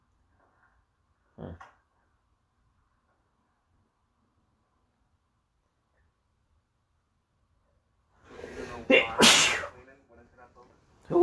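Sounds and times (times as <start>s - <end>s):
person sneezing: 8.8s - 9.7s.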